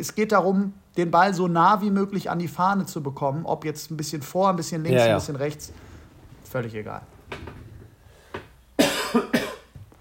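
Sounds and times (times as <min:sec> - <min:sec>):
speech: 0:00.0 - 0:05.9, 0:06.5 - 0:07.6
faint throat clearing: 0:08.8 - 0:09.8
person coughing: 0:08.8 - 0:09.8.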